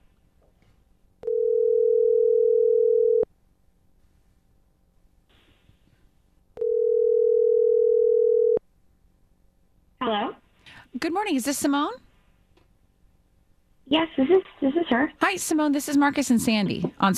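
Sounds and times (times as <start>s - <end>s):
telephone ringing tones of an outgoing call: 1.2s - 3.3s, 6.6s - 8.6s
speech: 11.1s - 12.0s, 13.9s - 17.1s.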